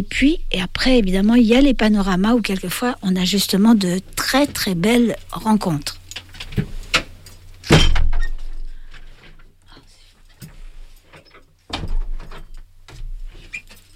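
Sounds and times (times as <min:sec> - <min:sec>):
speech: 0:00.0 - 0:06.0
low hum: 0:00.0 - 0:13.9
door pulled shut with a loud rattling thud: 0:07.7 - 0:08.4, 0:11.7 - 0:13.2.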